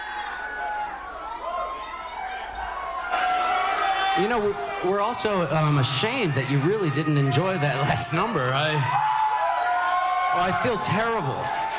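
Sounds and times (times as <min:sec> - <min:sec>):
live concert audience cheering and screaming: 0:00.0 - 0:11.7
people whooping and yelling: 0:00.0 - 0:11.7
speech: 0:04.2 - 0:09.2, 0:10.3 - 0:11.6.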